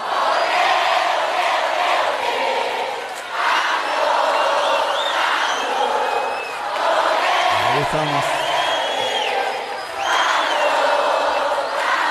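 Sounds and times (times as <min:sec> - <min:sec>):
whistles: 0:00.0 - 0:01.1, 0:03.5 - 0:06.7, 0:07.6 - 0:12.0
large crowd cheering and shouting in welcome: 0:00.0 - 0:12.0
person speaking: 0:07.5 - 0:08.4.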